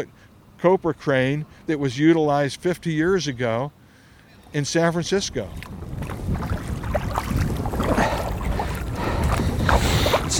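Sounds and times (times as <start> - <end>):
speech: 0.0 - 3.8, 4.5 - 5.9
water noise: 0.0 - 10.3
wind: 0.0 - 10.3
paddles splashing as a small boat is paddled into a creek from San Francisco bay: 5.0 - 10.3.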